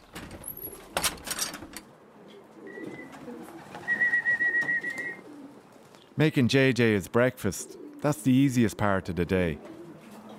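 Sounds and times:
pigeons cooing in a pigeon loft: 0.4 - 1.1, 1.8 - 6.2, 7.4 - 10.3
speech: 6.2 - 9.7.

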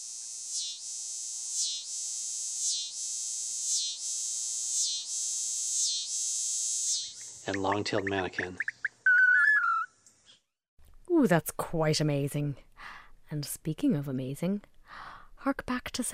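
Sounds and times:
scissor-grinder cicada song: 0.0 - 9.2
speech: 7.4 - 8.7, 11.2 - 12.7, 13.3 - 14.7, 15.4 - 16.1.

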